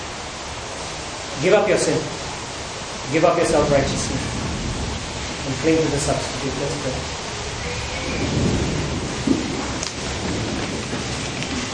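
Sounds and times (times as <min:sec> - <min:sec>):
steady rain hissing: 0:00.0 - 0:11.7
speech: 0:01.4 - 0:02.2, 0:03.1 - 0:04.4, 0:05.5 - 0:07.2, 0:08.1 - 0:08.6
low thunder rumbling during a rainstorm: 0:03.1 - 0:11.7.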